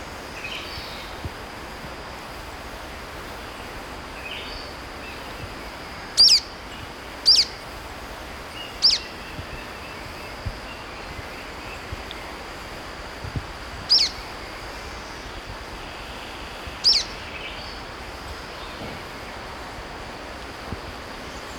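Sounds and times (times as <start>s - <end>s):
thin steady insect-like whine: 0.0s - 21.5s
golden-crowned flycatcher calls in Ecuador: 6.2s - 6.4s, 7.3s - 7.5s, 8.8s - 9.1s, 13.9s - 14.2s, 16.8s - 17.2s.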